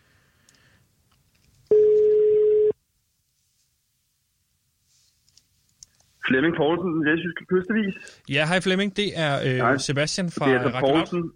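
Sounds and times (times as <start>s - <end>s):
telephone ringing tone: 1.7s - 2.8s
speech: 6.3s - 11.3s.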